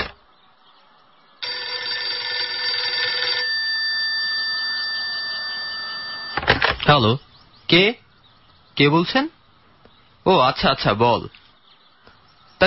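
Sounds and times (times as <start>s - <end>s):
landline telephone ringing with an electronic trill: 1.4s - 6.9s
speech: 6.9s - 8.0s, 8.8s - 9.4s, 10.2s - 11.4s.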